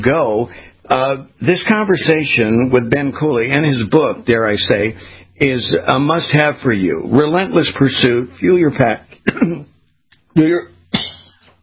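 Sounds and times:
speech: 0.0 - 9.7, 10.4 - 11.1
person coughing after a drink went down the wrong way: 9.2 - 9.7, 10.9 - 11.6.

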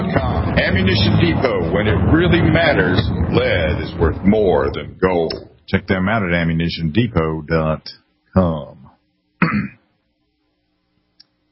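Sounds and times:
speech: 0.2 - 8.8, 9.4 - 9.8
throat clearing: 9.4 - 9.9.

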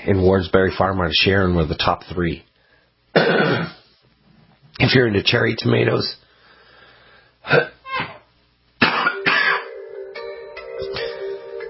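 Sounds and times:
speech: 0.0 - 2.5, 3.2 - 3.7, 4.8 - 6.2, 7.4 - 8.1
person coughing with a throaty rasp: 3.2 - 3.8, 8.8 - 9.7.

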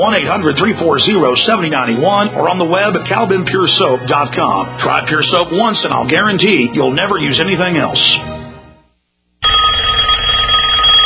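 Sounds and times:
speech: 0.0 - 8.3
loud telephone bell ringing: 9.4 - 11.0.

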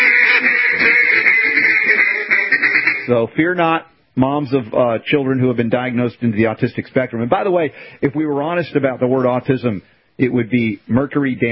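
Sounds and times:
duck quacking sound effect: 0.0 - 3.1
speech: 3.1 - 11.4.

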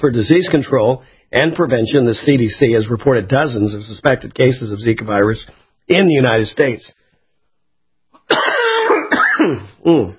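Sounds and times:
speech: 0.0 - 7.0, 8.3 - 8.8, 9.5 - 10.1
person coughing with rough throat-clearing rasp: 8.2 - 10.1.

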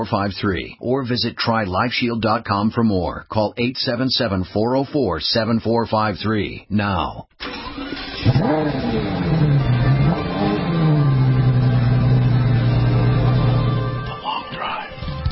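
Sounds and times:
speech: 0.0 - 7.5, 8.2 - 9.4
Mercedes-Benz E63 AMG luxury sports car engine revving: 7.6 - 14.1.

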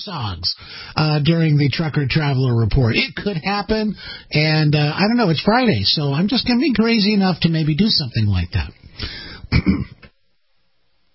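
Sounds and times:
speech: 0.0 - 9.9
person coughing: 9.2 - 10.1
throat clearing: 9.4 - 10.1.

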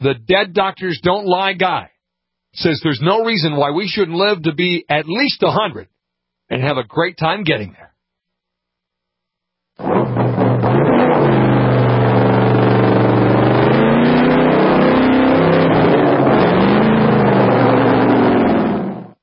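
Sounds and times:
speech: 0.0 - 1.9, 2.5 - 5.9, 6.5 - 7.9
hot rod engine revving at a drag race: 9.8 - 19.2.

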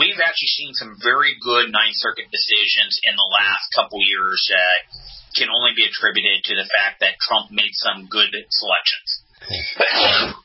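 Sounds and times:
speech: 0.2 - 10.4
person sneezing: 9.4 - 10.4.

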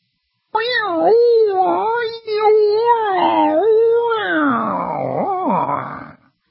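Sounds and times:
person's voice mimicking whale song: 0.6 - 6.2.

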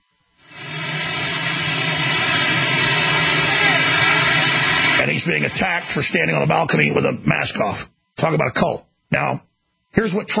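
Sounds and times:
helicopter engine roaring with whining hum: 0.4 - 6.8
speech: 5.3 - 10.3.

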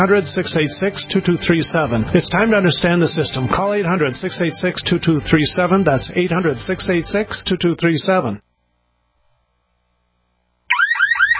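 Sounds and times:
speech: 0.0 - 8.5
home security alarm ringing: 10.7 - 11.3.

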